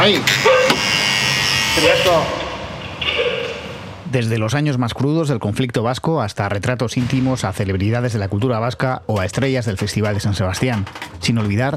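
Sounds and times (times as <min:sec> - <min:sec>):
speech: 0:00.0 - 0:00.6, 0:01.8 - 0:02.4, 0:04.1 - 0:11.7
door entry buzzer sounding as a door is opened: 0:00.0 - 0:02.4.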